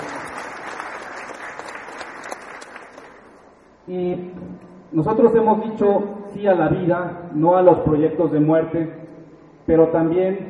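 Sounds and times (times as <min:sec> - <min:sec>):
sustained applause from a sizable audience: 0:00.0 - 0:03.4
speech: 0:03.9 - 0:09.1, 0:09.7 - 0:10.4.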